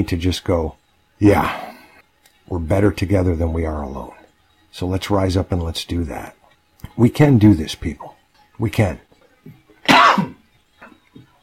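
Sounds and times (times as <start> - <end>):
speech: 0.0 - 1.7, 2.5 - 9.6
sneeze: 9.9 - 10.4.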